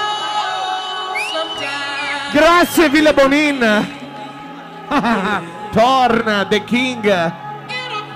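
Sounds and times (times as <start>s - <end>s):
audience cheering and whooping: 0.0s - 5.4s
audience whistles: 1.1s - 3.5s
speech: 2.3s - 4.0s, 4.9s - 7.4s
laughter: 4.8s - 5.6s.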